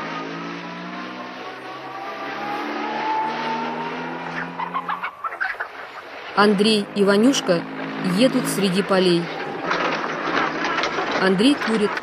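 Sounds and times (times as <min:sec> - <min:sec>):
car engine pulling away on a dusty road: 0:00.0 - 0:11.2
startled chicken clucking: 0:04.6 - 0:06.1
speech: 0:06.4 - 0:09.4, 0:11.2 - 0:12.0.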